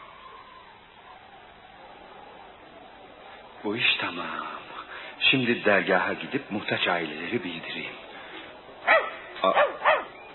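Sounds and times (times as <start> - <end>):
speech: 3.6 - 8.1, 9.4 - 9.7
dog barking: 8.8 - 10.2.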